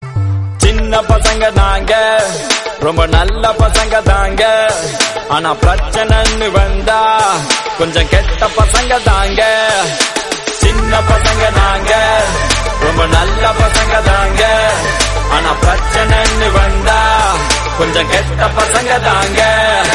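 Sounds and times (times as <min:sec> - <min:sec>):
song: 0:00.0 - 0:19.9.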